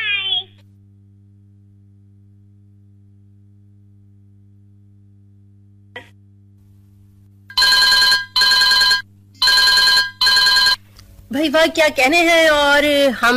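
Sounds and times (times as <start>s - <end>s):
low steady electrical hum: 0.0s - 13.3s
telephone ringing with incoming calls: 7.5s - 10.8s
speech: 11.3s - 13.3s.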